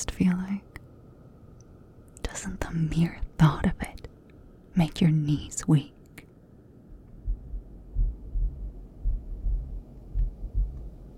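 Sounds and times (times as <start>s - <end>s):
low hum: 0.0s - 11.1s
speech: 0.2s - 0.7s, 2.4s - 4.0s, 4.8s - 6.0s
deep heartbeat thudding: 7.0s - 11.1s.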